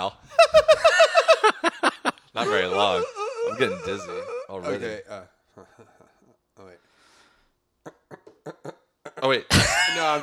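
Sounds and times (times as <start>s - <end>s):
laughter: 0.3s - 5.0s
person making wordless vocal sounds: 2.3s - 6.8s
speech: 2.4s - 5.4s, 9.2s - 10.2s.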